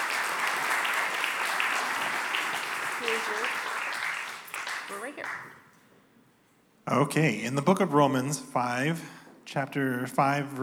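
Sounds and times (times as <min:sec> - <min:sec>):
crowd applauding: 0:00.0 - 0:05.6
speech: 0:03.1 - 0:03.7, 0:04.9 - 0:05.7, 0:06.9 - 0:10.6.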